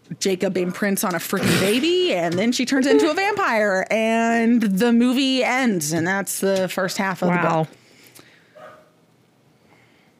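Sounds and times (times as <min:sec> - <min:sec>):
speech: 0:00.2 - 0:07.8
dog giving a short bark: 0:08.6 - 0:09.0.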